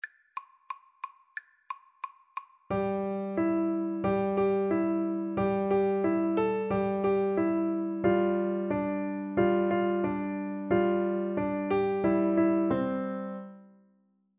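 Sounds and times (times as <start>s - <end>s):
piano duet: 2.7s - 13.8s.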